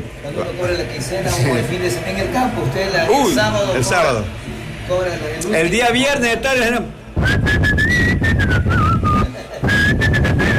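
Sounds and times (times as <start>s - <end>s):
steady noisy background: 0.0s - 10.5s
speech: 0.2s - 10.5s
person whistling a cheerful bouncy tune: 7.2s - 10.5s.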